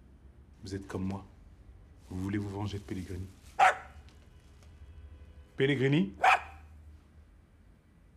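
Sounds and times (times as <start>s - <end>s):
faint hum: 0.0s - 8.1s
speech: 0.6s - 1.3s, 2.1s - 3.6s, 5.6s - 6.3s
dog barking: 3.6s - 4.0s, 6.2s - 6.7s.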